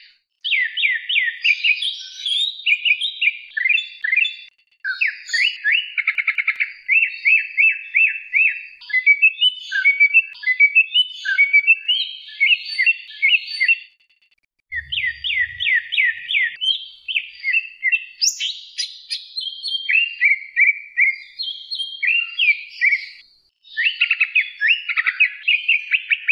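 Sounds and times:
leafbird singing a medley of chirps, whistled slurs and trills: 0.4s - 14.0s, 14.7s - 26.2s
dull low bump: 14.7s - 16.3s.

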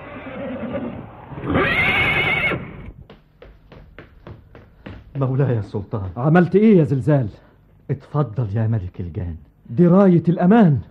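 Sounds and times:
horse whinnying: 0.0s - 2.9s
speech: 5.2s - 10.8s.

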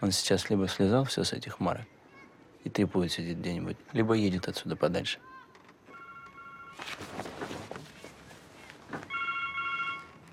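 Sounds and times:
speech: 0.0s - 2.0s, 2.6s - 5.3s
mobile phone electronic ringtone in a film scene: 5.9s - 6.8s, 9.1s - 10.2s
rustling: 6.7s - 9.2s.

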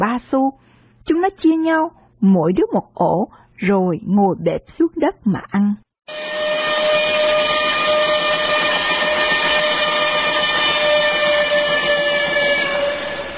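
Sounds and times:
speech: 0.0s - 8.3s
steam train whistle as it halts and pulls away: 6.1s - 13.3s.

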